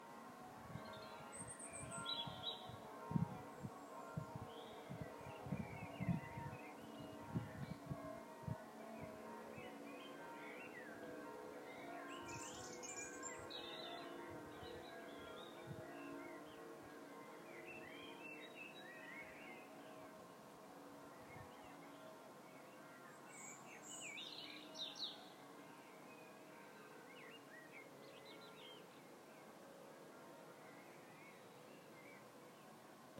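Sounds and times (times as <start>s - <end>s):
evening outdoor ambience in the Lake District UK in May: 0.0s - 33.1s.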